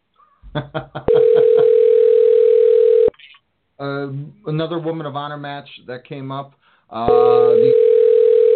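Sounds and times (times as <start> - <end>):
speech: 0.5 - 1.0, 4.0 - 7.9
telephone ringback tone during an outgoing call: 1.2 - 3.1, 7.1 - 8.5.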